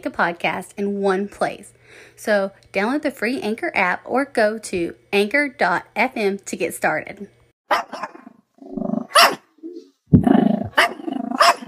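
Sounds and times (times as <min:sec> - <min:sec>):
speech: 0:00.0 - 0:09.2
puppy yapping and barking: 0:07.7 - 0:08.4, 0:09.0 - 0:09.5, 0:10.7 - 0:11.6
puppy growling with low rumbling growls: 0:08.2 - 0:09.3, 0:10.1 - 0:11.6.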